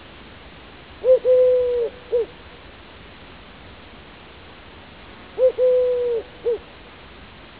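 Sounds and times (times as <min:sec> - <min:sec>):
faint background hiss: 0:00.0 - 0:07.5
Eurasian collared dove Streptopelia decaocto cooing: 0:01.0 - 0:02.3, 0:05.4 - 0:06.7.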